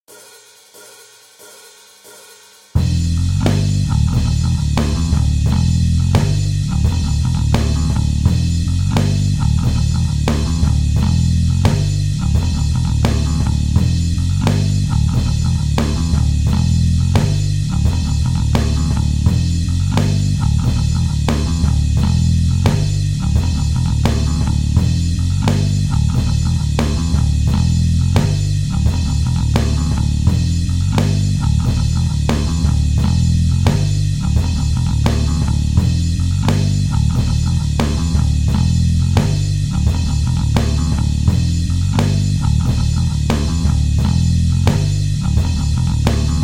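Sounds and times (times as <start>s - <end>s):
single-string solo backing track: 2.8s - 46.4s.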